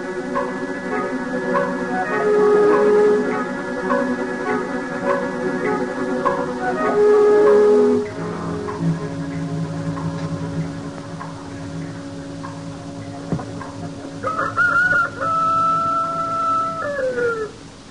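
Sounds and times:
steady hum: 0.0 - 17.8
rooster crowing: 0.4 - 8.7, 13.2 - 17.7.

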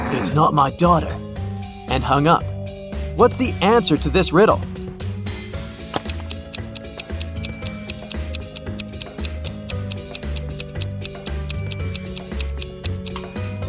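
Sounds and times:
speech: 0.1 - 1.3, 1.9 - 2.5, 3.2 - 4.8
clock ticking: 6.0 - 13.2.

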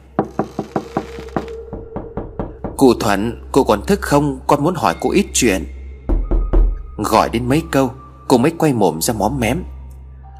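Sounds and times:
man knocking on a wooden door: 0.2 - 3.0, 6.1 - 6.8
speech: 2.8 - 5.8, 7.0 - 9.7.

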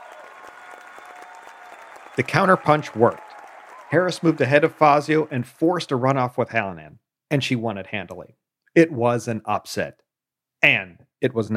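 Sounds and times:
large crowd giving a standing ovation: 0.0 - 6.1
speech: 2.2 - 3.2, 3.9 - 10.0, 10.6 - 11.5.

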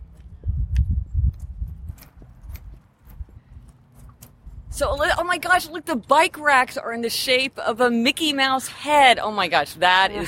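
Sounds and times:
footsteps walking outdoors: 0.0 - 6.6
speech: 4.8 - 10.2.

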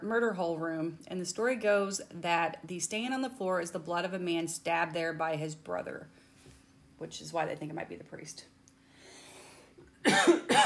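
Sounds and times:
speech: 0.0 - 6.2, 7.0 - 8.6, 10.0 - 10.6
dry coughs from a person with a dry throat: 10.0 - 10.6.

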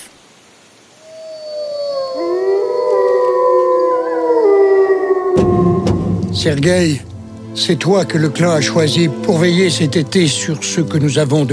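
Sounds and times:
several wolves howling in chorus: 1.0 - 7.3
speech: 6.4 - 11.5.

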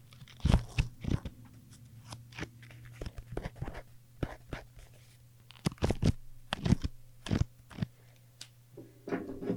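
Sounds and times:
stack of sticky notes being handled: 0.0 - 4.7, 5.4 - 8.1
faint steady hum: 0.0 - 9.5.

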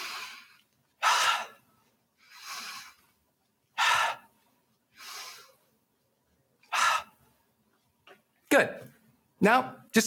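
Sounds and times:
deep breaths during a guided breathing exercise: 0.0 - 5.9, 6.6 - 7.6
speech: 8.6 - 10.0.

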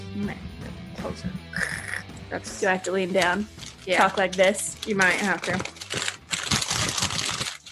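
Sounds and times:
speech: 0.2 - 5.7
wrapping paper crinkling on a present: 3.2 - 7.7.

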